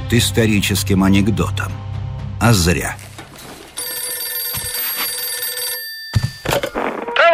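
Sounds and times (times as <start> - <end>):
speech: 0.1 - 3.1
telephone bell ringing: 3.8 - 7.2.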